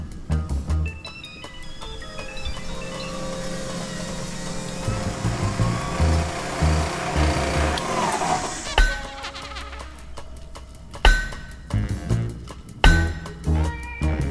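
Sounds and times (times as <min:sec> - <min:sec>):
drill press grinding on a vault door: 0:02.5 - 0:09.2
hammer blows striking a heavy vault door: 0:04.0 - 0:13.6.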